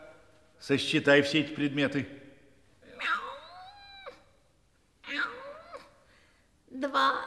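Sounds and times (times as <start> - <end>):
speech: 0.6 - 2.2
cat meowing: 2.8 - 4.4, 5.0 - 6.0.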